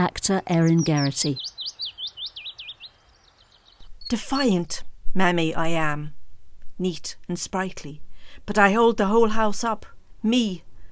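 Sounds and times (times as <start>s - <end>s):
speech: 0.0s - 1.6s, 4.1s - 6.2s, 6.8s - 10.7s
bird singing slurred looping whistled notes: 0.6s - 4.5s.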